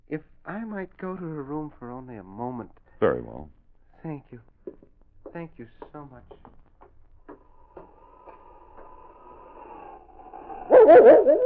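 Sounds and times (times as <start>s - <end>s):
speech: 0.1s - 6.6s, 10.9s - 11.4s
dog whining softly: 9.3s - 11.4s
dog barking and yelping excitedly: 9.6s - 11.4s.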